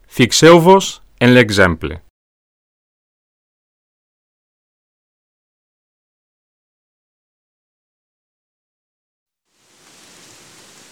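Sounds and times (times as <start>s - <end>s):
speech: 0.2s - 2.0s
heavy rain: 9.5s - 10.9s.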